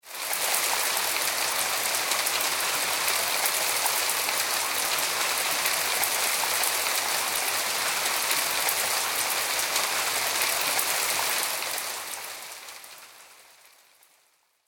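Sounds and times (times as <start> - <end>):
medium rain falling on leafy trees: 0.0 - 14.6.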